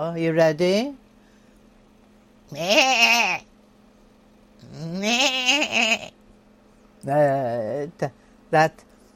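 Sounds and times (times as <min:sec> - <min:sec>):
speech: 0:00.0 - 0:01.0, 0:02.5 - 0:03.5, 0:04.6 - 0:06.2, 0:07.0 - 0:08.9
person imitating goat with wavering nasal bleats: 0:02.5 - 0:03.5, 0:04.6 - 0:06.1.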